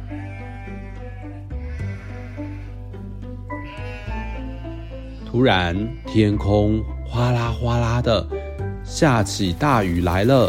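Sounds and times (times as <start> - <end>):
flock of sheep bleating while being herded: 0.0 - 7.9
speech: 5.3 - 10.4.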